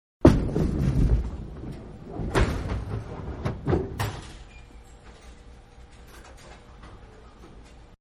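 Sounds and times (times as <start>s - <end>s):
bowling gutter ball: 0.2s - 4.1s.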